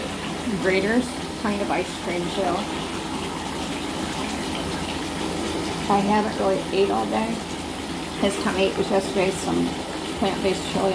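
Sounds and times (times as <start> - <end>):
hot water pouring from a dispenser: 0.0 - 10.9
speech: 0.5 - 3.0, 5.9 - 7.5, 8.2 - 10.9.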